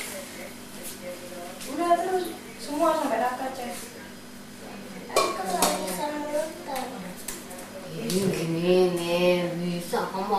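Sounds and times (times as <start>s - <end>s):
people talking: 0.0s - 10.3s
spoons clattering against dishes: 5.1s - 6.0s.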